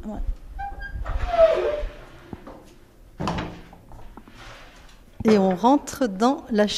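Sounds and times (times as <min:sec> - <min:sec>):
speech: 0:00.0 - 0:00.4, 0:05.2 - 0:06.7
heavy wooden door scraping and creaking open: 0:00.6 - 0:02.6, 0:03.2 - 0:03.8.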